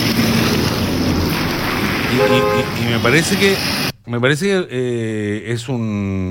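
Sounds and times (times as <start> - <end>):
water running through a flooded place, possibly sewage: 0.0 - 3.9
speech: 2.1 - 6.2.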